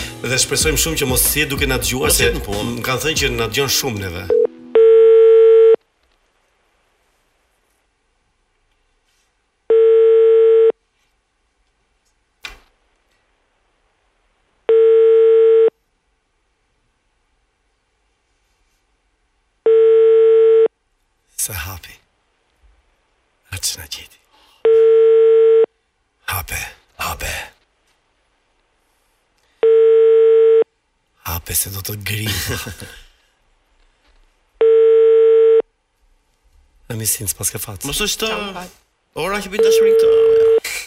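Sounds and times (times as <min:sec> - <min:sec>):
speech: 0:00.2 - 0:04.4, 0:31.6 - 0:33.1, 0:36.9 - 0:40.4
telephone line tones while calling a reception number: 0:04.3 - 0:05.8, 0:09.7 - 0:10.8, 0:14.7 - 0:15.7, 0:19.7 - 0:20.7, 0:24.6 - 0:25.7, 0:29.6 - 0:30.6, 0:34.6 - 0:35.6, 0:39.6 - 0:40.6
laughter: 0:32.2 - 0:33.1.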